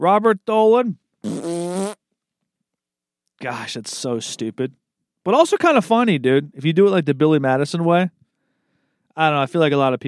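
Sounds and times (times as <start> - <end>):
speech: 0.0 - 1.4, 3.4 - 8.2, 9.2 - 10.0
person imitating a fart with their mouth: 1.2 - 2.0.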